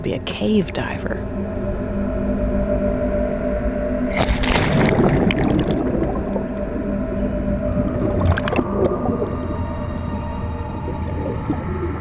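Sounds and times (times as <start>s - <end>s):
speech: 0.0s - 1.4s
eerie tonal groans underwater inside an Antarctic iceberg: 0.0s - 11.9s
underwater low rumble inside an iceberg: 0.0s - 11.9s
loud bubbly crackling bursts underwater inside an Antarctic iceberg: 4.1s - 6.9s, 7.6s - 9.5s, 10.7s - 11.9s.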